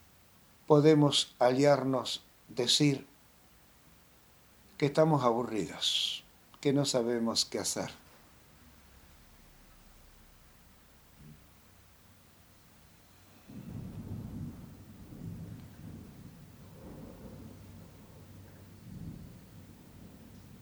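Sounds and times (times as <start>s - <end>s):
rain hissing: 0.0s - 6.8s, 7.4s - 20.5s
speech: 0.7s - 3.1s, 4.8s - 8.0s
thunder rumbling during a thunderstorm: 13.2s - 20.5s.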